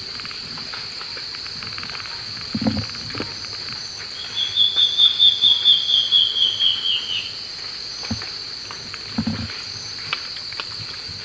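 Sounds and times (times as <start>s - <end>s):
steady insect drone: 0.0s - 11.2s
Black-faced Antbird Myrmoborus myotherinus elegans whistled song: 4.2s - 7.4s.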